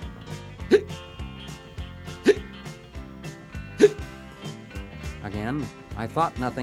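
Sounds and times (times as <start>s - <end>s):
steady musical background: 0.0s - 6.6s
person hiccuping: 0.6s - 1.0s, 2.2s - 2.5s, 3.8s - 4.1s
speech: 5.4s - 6.6s.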